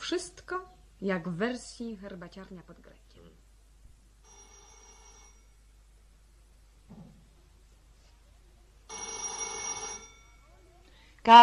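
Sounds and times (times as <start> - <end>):
speech: 0.1 - 3.0, 11.2 - 11.4
telephone ringing: 4.2 - 5.7, 8.9 - 10.5.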